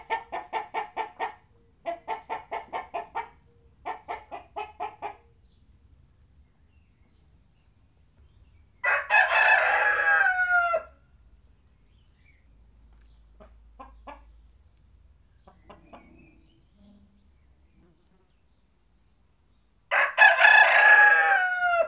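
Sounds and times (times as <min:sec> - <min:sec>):
chickens clucking: 0:00.0 - 0:05.5, 0:12.9 - 0:17.2
rooster crowing cock-a-doodle-doo: 0:08.8 - 0:11.0, 0:19.9 - 0:21.8.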